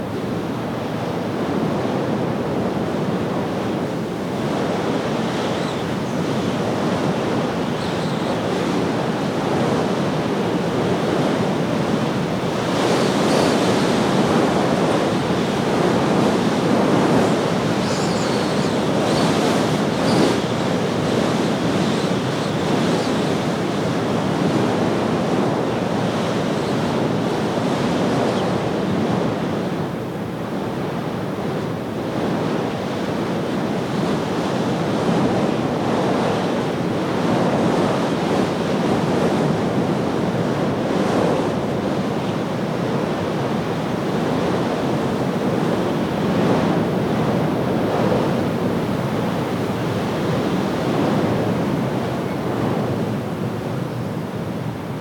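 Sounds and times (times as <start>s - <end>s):
wind at night: 0.0s - 55.0s.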